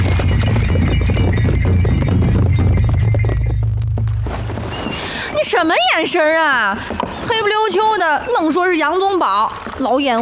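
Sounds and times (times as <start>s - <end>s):
horse hooves galloping: 0.0s - 8.0s
speech: 5.6s - 10.2s.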